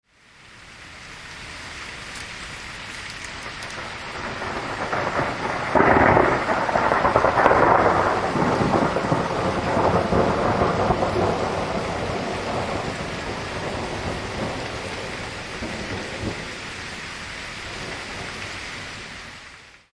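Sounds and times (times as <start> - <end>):
rain: 0.0 - 19.9
thunder: 3.7 - 16.9.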